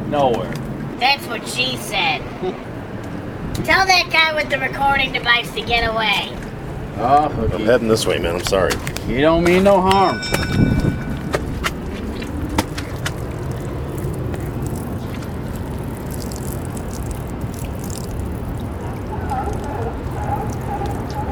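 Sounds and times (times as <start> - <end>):
speech: 0.1 - 2.7, 3.6 - 10.9
small waterfall flowing onto rock: 12.2 - 21.1.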